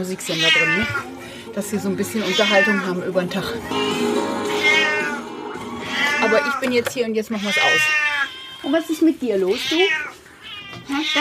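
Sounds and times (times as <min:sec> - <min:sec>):
speech: 0:00.0 - 0:04.4, 0:06.3 - 0:10.0, 0:10.9 - 0:11.2
cat meowing insistently: 0:00.3 - 0:01.1, 0:02.2 - 0:03.0, 0:03.6 - 0:05.2, 0:05.8 - 0:06.7, 0:07.3 - 0:08.9, 0:09.5 - 0:11.2.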